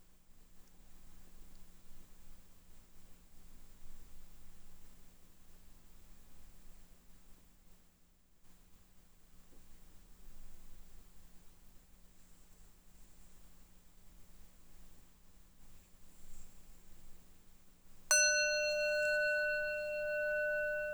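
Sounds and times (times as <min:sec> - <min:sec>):
faint hum: 0:18.1 - 0:20.9
meditation bell struck and ringing: 0:18.1 - 0:20.9.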